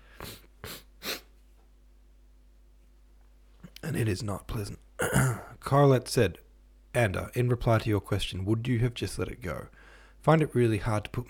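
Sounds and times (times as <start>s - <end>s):
wet sniffles through a stuffy nose: 0.0s - 1.4s
speech: 3.9s - 11.2s.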